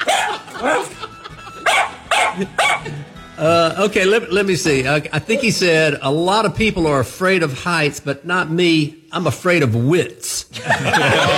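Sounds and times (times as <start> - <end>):
dog barking: 0.0 - 0.9, 1.6 - 2.9
laughter: 0.0 - 3.2, 10.5 - 11.3
speech: 2.4 - 2.6, 3.4 - 11.3.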